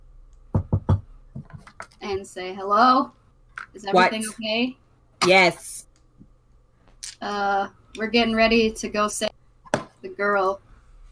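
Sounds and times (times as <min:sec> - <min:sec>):
quick solid knocks on a door: 0:00.5 - 0:01.6
speech: 0:02.1 - 0:05.8, 0:07.2 - 0:09.3, 0:10.2 - 0:10.6.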